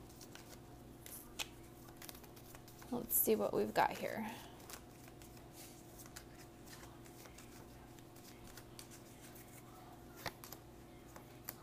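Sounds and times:
Lenormand cards being handled and shuffled: 0.0s - 3.0s, 3.9s - 11.6s
speech: 2.9s - 4.5s.

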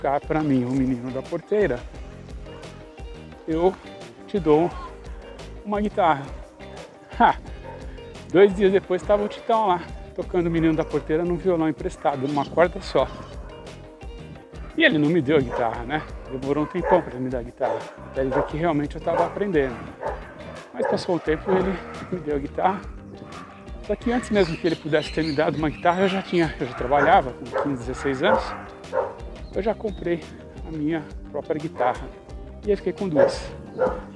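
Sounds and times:
speech: 0.0s - 2.0s, 3.5s - 4.9s, 5.6s - 6.4s, 7.2s - 7.5s, 8.3s - 13.4s, 14.8s - 20.1s, 20.7s - 34.1s
dog barking: 7.6s - 7.9s, 9.1s - 9.9s, 10.6s - 11.3s, 11.9s - 13.6s, 14.6s - 24.5s, 26.1s - 29.2s, 33.2s - 34.1s.

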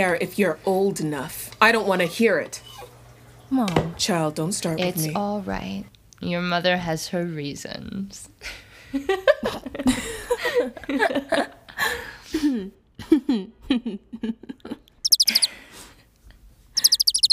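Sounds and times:
speech: 0.0s - 2.7s, 3.5s - 14.8s
pet bird chirping at home: 15.0s - 15.5s, 16.8s - 17.3s
voice-like chatter and squeaks: 15.1s - 15.5s, 16.8s - 17.3s.

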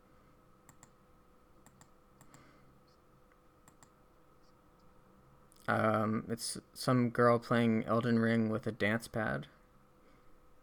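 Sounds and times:
low steady hum: 0.0s - 10.6s
computer mouse clicks opening a link: 0.7s - 1.0s, 1.6s - 2.5s, 3.6s - 4.0s
speech: 5.7s - 9.6s.

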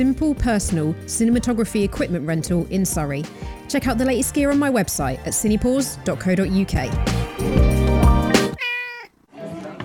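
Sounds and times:
speech: 0.0s - 7.8s
cat meowing: 8.6s - 9.2s.

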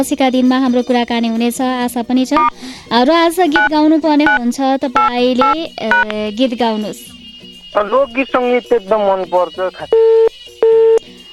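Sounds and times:
speech: 0.0s - 10.8s
mid-pitched telephone busy tone after a caller's call cuts out: 3.6s - 4.4s, 5.0s - 6.1s, 9.9s - 11.3s
voice over a disturbed phone line: 7.8s - 10.0s.

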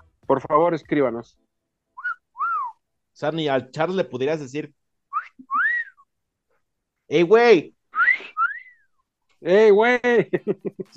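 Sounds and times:
speech: 0.3s - 1.4s, 3.2s - 4.8s, 7.1s - 7.8s, 9.4s - 10.9s
person whistling two calling notes: 2.0s - 2.8s, 5.1s - 6.1s, 7.9s - 9.0s.

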